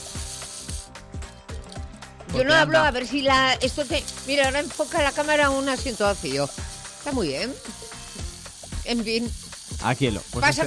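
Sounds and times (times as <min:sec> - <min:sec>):
wind-up metal toy robot winding down with ratcheting clicks: 0:00.0 - 0:00.9, 0:03.6 - 0:10.6
speech: 0:02.3 - 0:07.8, 0:08.9 - 0:10.6.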